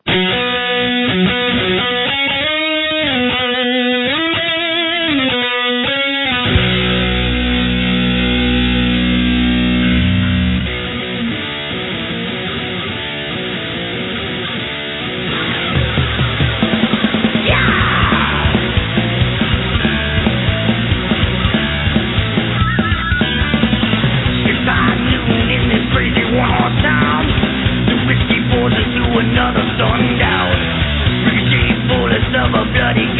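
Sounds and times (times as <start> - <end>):
sustained distorted power chords: 0.0 - 33.1
wavering distorted lead guitar lines: 0.0 - 33.1
pounding drums in a fast driving beat: 15.8 - 33.1.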